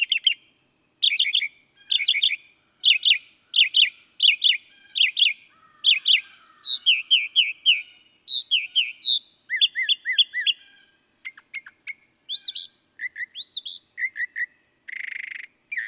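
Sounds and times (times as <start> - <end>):
Northern mockingbird singing a medley of buzzy chirping and whistled phrases: 0.0 - 15.8.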